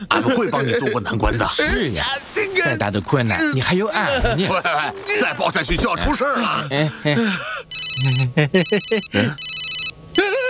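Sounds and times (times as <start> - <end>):
laughter: 0.0 - 2.7, 3.7 - 9.4
speech: 0.1 - 9.4
mobile phone ringtone with bright electronic melody: 7.7 - 10.0.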